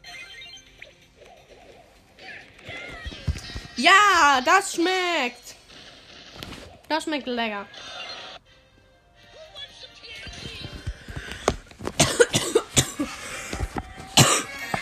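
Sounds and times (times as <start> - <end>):
speech: 3.8 - 5.4, 6.9 - 7.8
person coughing forcefully with a throaty rasp: 12.0 - 13.2, 14.2 - 14.6.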